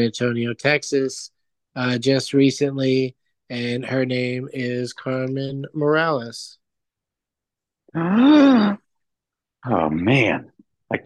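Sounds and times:
speech: 0:00.0 - 0:06.6, 0:07.9 - 0:08.8, 0:09.6 - 0:11.0
person gasping ooh: 0:07.9 - 0:08.8.

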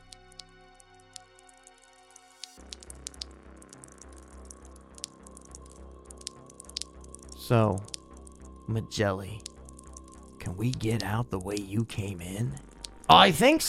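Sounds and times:
blood dripping from walls: 0:02.4 - 0:07.3, 0:09.4 - 0:11.6
low droning ambient hum: 0:02.6 - 0:13.6
speech: 0:07.5 - 0:07.9, 0:08.7 - 0:09.5, 0:10.5 - 0:13.6.

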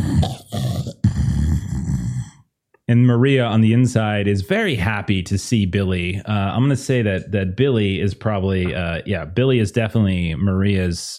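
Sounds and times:
person's voice imitating a knocked-out dog groaning: 0:00.0 - 0:02.4
speech: 0:02.9 - 0:11.1.

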